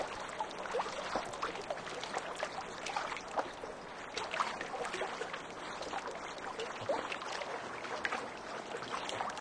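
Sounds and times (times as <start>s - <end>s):
calm lake waves: 0.0s - 9.4s.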